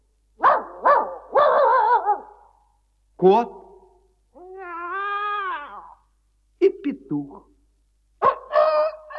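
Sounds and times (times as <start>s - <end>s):
dog barking: 0.4s - 2.6s, 8.2s - 9.0s
speech: 3.2s - 3.6s, 7.1s - 7.5s.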